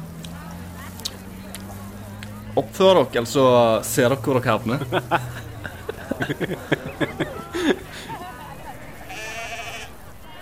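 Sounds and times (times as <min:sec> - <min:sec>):
laughter: 0:00.4 - 0:10.4
speech: 0:02.6 - 0:05.4, 0:06.2 - 0:07.6
several sheep bleating: 0:08.9 - 0:10.4.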